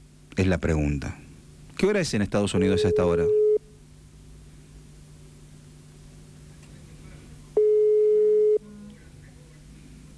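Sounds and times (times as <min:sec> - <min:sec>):
speech: 0:00.4 - 0:01.2, 0:01.8 - 0:03.4
quiet phone line hiss: 0:02.6 - 0:03.6, 0:07.6 - 0:09.0
telephone ringback tone while calling a number in the United States: 0:02.8 - 0:03.6, 0:07.6 - 0:08.9.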